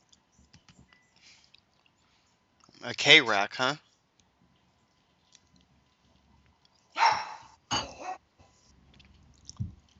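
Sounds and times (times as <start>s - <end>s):
faint small noises: 0.0s - 9.9s
speech: 2.8s - 3.8s
puppy barking wanting treats: 7.0s - 7.5s.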